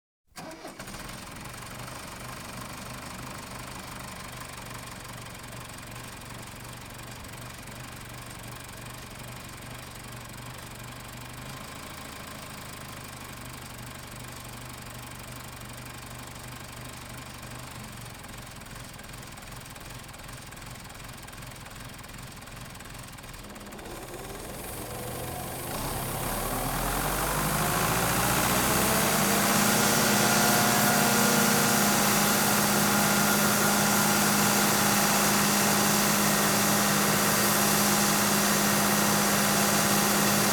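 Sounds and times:
grain blower farm machinery: 0:00.4 - 0:05.7, 0:23.2 - 0:40.5.

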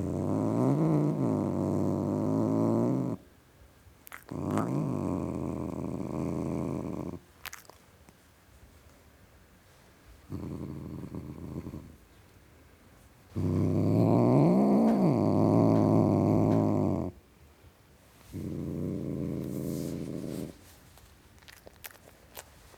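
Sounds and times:
male tom cat growling: 0:00.0 - 0:03.2, 0:04.1 - 0:07.8, 0:10.3 - 0:12.0, 0:13.3 - 0:17.2, 0:18.3 - 0:20.6.

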